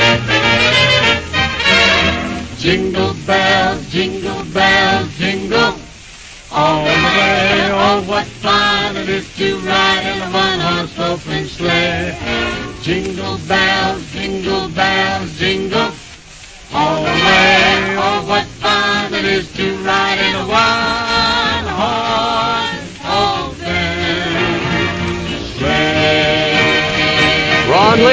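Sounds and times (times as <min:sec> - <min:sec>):
lively band playing: 0:00.0 - 0:02.6, 0:11.8 - 0:13.0, 0:21.8 - 0:28.1
voices singing a Christmas song in harmony: 0:00.0 - 0:28.1.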